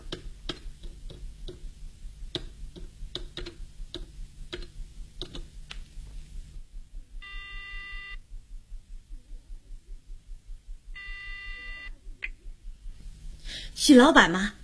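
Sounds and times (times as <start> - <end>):
low steady hum: 0.0 - 14.6
long electronic telephone tones as a call is placed from a hotel: 7.2 - 8.2, 11.0 - 12.4
speech: 13.8 - 14.6.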